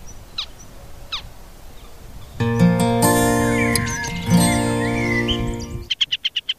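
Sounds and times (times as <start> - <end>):
male bird of prey calling in flight: 3.4 - 6.5.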